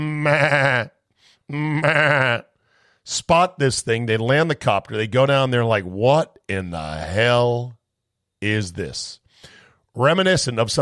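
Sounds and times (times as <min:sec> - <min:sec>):
sheep bleating: 0:00.0 - 0:02.5
speech: 0:00.0 - 0:02.5, 0:03.1 - 0:07.8, 0:08.4 - 0:10.8.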